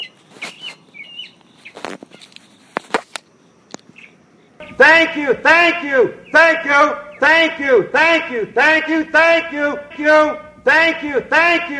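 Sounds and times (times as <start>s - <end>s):
rustling: 0.0s - 4.2s
birds chirping and whistling under a tree in South Carolina: 0.0s - 11.7s
sharp clicks: 1.4s - 4.2s
speech: 4.8s - 11.7s.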